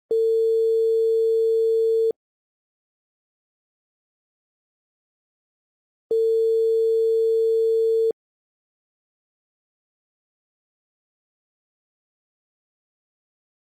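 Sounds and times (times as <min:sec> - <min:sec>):
Turkish telephone ringback tone: 0:00.1 - 0:02.2, 0:06.1 - 0:08.2.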